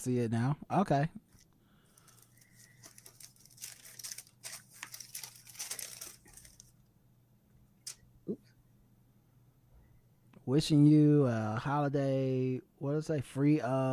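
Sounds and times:
speech: 0.0 - 1.3, 10.4 - 13.9
brief handling noises: 1.3 - 6.7
paper wrapping being unwrapped and crinkled: 1.3 - 6.8.

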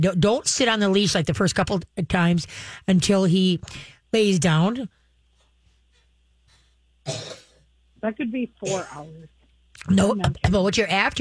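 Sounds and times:
speech: 0.0 - 5.0, 7.1 - 7.4, 8.0 - 11.2
single cough from a tickle in the throat: 7.1 - 7.6, 8.6 - 9.1.

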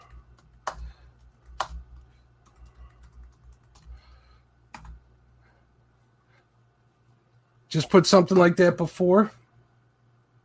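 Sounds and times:
soft typing on a computer keyboard: 0.0 - 5.0
speech: 7.8 - 9.4.

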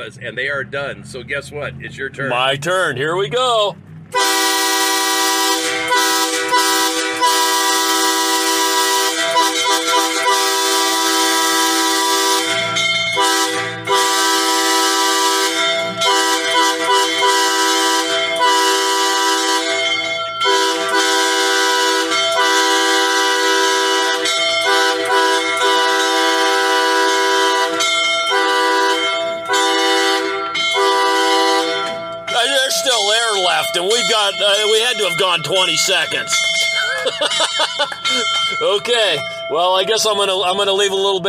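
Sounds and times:
speech: 0.0 - 4.3, 34.3 - 41.2
five o'clock factory whistle horn blaring in Astoria: 4.1 - 37.0
laughter: 36.6 - 38.6.

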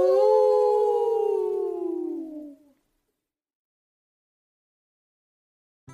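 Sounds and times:
voice imitating a dog's howl with a long downward-sliding wail: 0.0 - 2.7.

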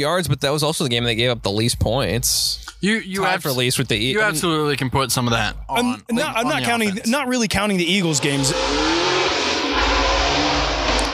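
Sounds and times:
speech: 0.0 - 9.2
loud car or motorcycle passing with a deep engine rumble: 8.2 - 11.1.

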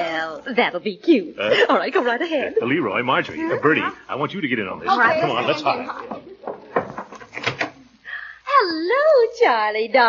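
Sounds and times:
speech: 0.4 - 6.4, 8.6 - 10.0
locked door opening with latch and hinges knocking: 6.5 - 7.8.

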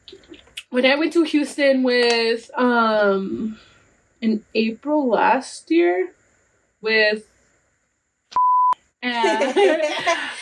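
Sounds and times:
speech: 0.7 - 6.2, 6.8 - 7.3, 9.0 - 10.4
censorship beep over a swear word: 8.4 - 8.8
laughter: 9.0 - 10.4.

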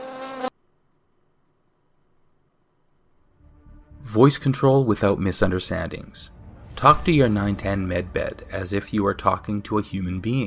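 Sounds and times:
bees buzzing in flight: 0.0 - 0.5
speech: 4.1 - 10.4.

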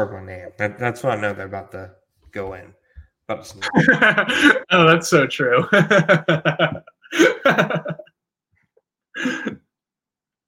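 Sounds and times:
speech: 0.0 - 8.0, 9.2 - 9.6
laughter: 3.6 - 4.9, 5.5 - 8.1
person sneezing: 9.2 - 9.6.

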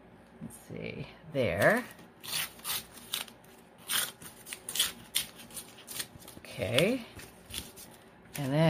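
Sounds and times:
speech: 0.5 - 2.4, 6.6 - 7.2, 8.4 - 8.6
paper torn by hand for a handmade craft pocket: 2.2 - 6.9.

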